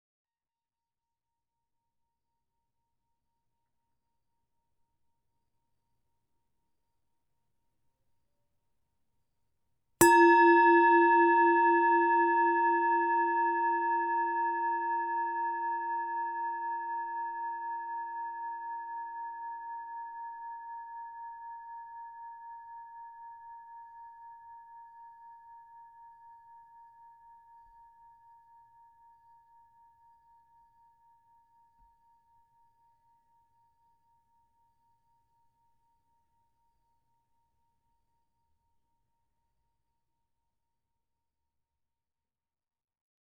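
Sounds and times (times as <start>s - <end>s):
bowl: 10.0s - 29.1s.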